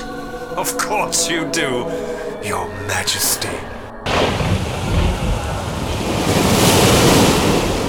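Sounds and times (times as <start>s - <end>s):
speech: 0.6s - 4.4s
stormy sea waves crashing around a sea fortress: 4.0s - 7.8s
strong wind roaring across the microphone: 4.1s - 7.8s.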